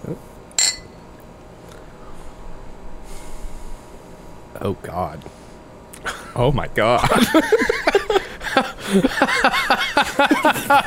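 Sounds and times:
speech: 0.1 - 0.4, 4.6 - 5.4, 6.3 - 10.8
beer glasses clinking in a toast: 0.5 - 1.1
laughter: 7.0 - 10.8.

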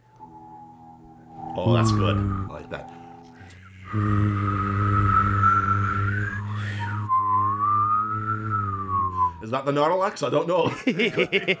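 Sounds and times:
person humming a steady low drone: 0.0 - 9.4
speech: 1.6 - 3.0, 3.9 - 5.0, 9.5 - 11.5
person whistling a higher wavering tune: 1.7 - 9.4
laughter: 10.6 - 11.5.

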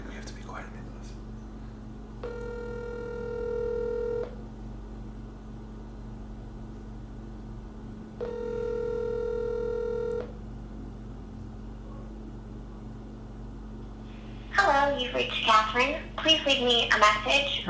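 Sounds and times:
low hum: 0.0 - 17.6
phone ringing on the line: 2.2 - 4.4, 8.2 - 10.4
speech: 15.1 - 17.6.

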